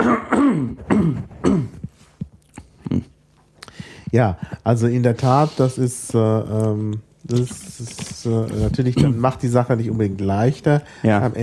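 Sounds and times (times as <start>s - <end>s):
person clearing throat: 0.0s - 1.9s, 2.8s - 3.1s, 8.9s - 9.3s
soft grunts and small coughs: 0.0s - 2.0s, 2.6s - 3.2s, 8.5s - 9.4s
speech: 4.1s - 11.4s.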